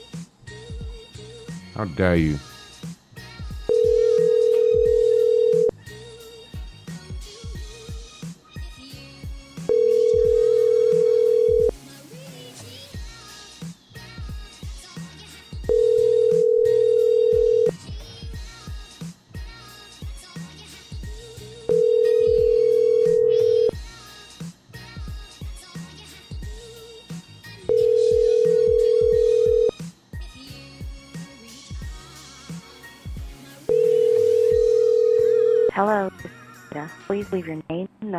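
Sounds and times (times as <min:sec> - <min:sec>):
speech: 0:01.8 - 0:02.5
ringback tones on an outgoing phone call: 0:03.7 - 0:05.8, 0:09.7 - 0:11.7, 0:15.7 - 0:17.7, 0:21.7 - 0:23.8, 0:27.7 - 0:29.7, 0:33.7 - 0:35.7.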